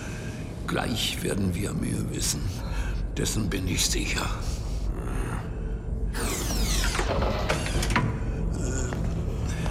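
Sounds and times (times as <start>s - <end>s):
low rumbling background: 0.0s - 9.6s
speech: 0.7s - 4.6s
heavy door mechanism aboard a ship clanking and ratcheting as it unlocks: 6.2s - 8.2s.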